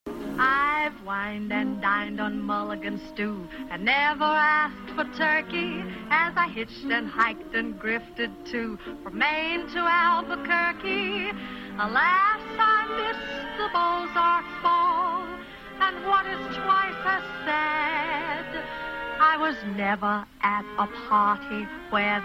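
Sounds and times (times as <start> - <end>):
person singing with a mid-Atlantic accent: 0.2 - 22.2.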